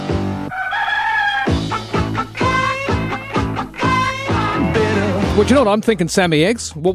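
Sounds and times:
rooster crowing in a novelty song: 0:00.5 - 0:01.6
upbeat novelty song with bouncy thumping backing track: 0:01.2 - 0:06.9
rhythmic bass hits: 0:01.5 - 0:06.2
speech: 0:05.4 - 0:06.9.

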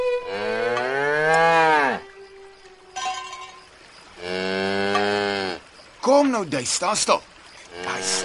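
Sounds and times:
cow mooing: 0:00.2 - 0:02.1, 0:04.2 - 0:05.6, 0:07.6 - 0:08.2
speech: 0:06.2 - 0:07.3, 0:08.0 - 0:08.2.

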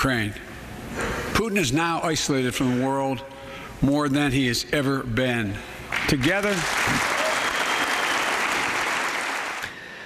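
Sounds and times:
speech: 0:00.0 - 0:07.1
loud sustained applause from a large crowd in a legislative chamber: 0:05.9 - 0:09.8.

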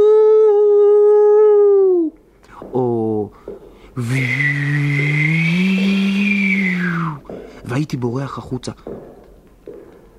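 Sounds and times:
voice imitating a spooky ghostly woo howl: 0:00.0 - 0:02.2, 0:04.0 - 0:07.2
speech: 0:07.8 - 0:09.0.

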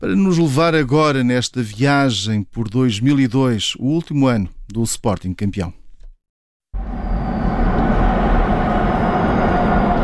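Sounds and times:
speech: 0:00.0 - 0:05.8
faint high whine of a metro train: 0:06.8 - 0:10.0
metro train in Porto Portugal rumbling along its rails: 0:06.8 - 0:10.0.

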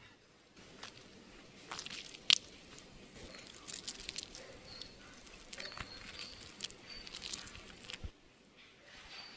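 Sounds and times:
lemon being squeezed for juice: 0:00.6 - 0:08.1.

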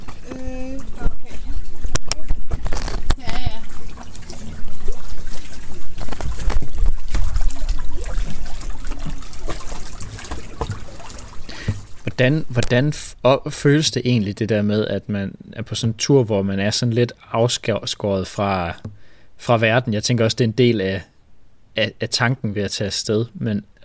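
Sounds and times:
small boat moving through water: 0:00.0 - 0:12.7
speech: 0:12.2 - 0:21.1, 0:21.8 - 0:23.8.

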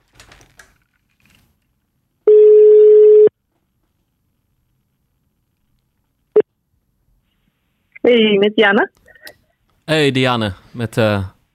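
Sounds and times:
telephone ringback tone on outgoing call: 0:02.3 - 0:03.3
speech: 0:08.1 - 0:09.0, 0:09.9 - 0:11.5.

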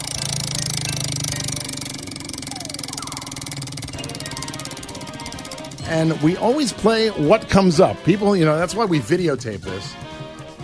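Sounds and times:
prize wheel spun clicking: 0:00.0 - 0:08.5
speech: 0:05.9 - 0:10.1.

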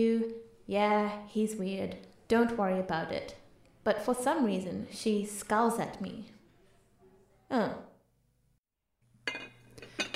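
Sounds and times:
speech: 0:00.0 - 0:06.4, 0:07.5 - 0:07.9
glass Pyrex dish clinking: 0:09.2 - 0:10.1.

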